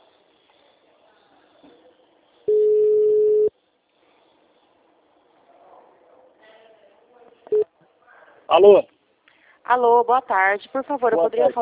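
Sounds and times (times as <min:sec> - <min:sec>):
telephone ringback tone on an outgoing call: 0:02.5 - 0:03.5
speech: 0:08.5 - 0:08.9, 0:09.7 - 0:11.6.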